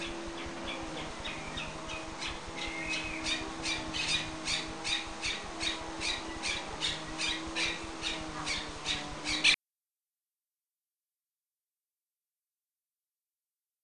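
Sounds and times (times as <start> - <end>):
bird making harsh raspy squawks: 0.0 - 9.6
low humming drone: 0.0 - 9.6.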